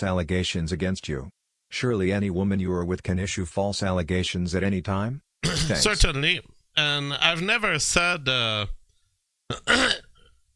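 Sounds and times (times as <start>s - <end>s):
speech: 0.0s - 8.8s, 9.5s - 10.0s
person coughing: 5.4s - 5.8s, 9.5s - 10.2s.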